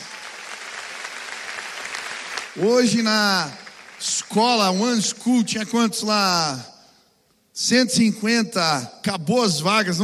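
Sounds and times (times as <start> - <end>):
room full of people applauding: 0.0 - 4.4
speech: 2.6 - 6.7, 7.6 - 10.0.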